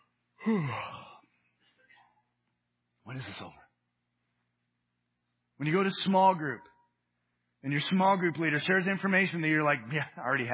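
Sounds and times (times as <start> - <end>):
speech: 0.4 - 1.0, 3.1 - 3.6, 5.6 - 6.7, 7.6 - 10.5
person yawning with breathy exhale: 0.4 - 1.2.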